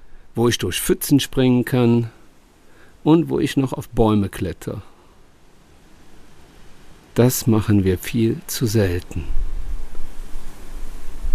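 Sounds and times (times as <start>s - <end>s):
wind among cork oak trees: 0.0s - 11.3s
speech: 0.4s - 2.2s, 3.0s - 4.9s, 7.2s - 9.4s
wind buffeting the microphone: 9.1s - 11.3s.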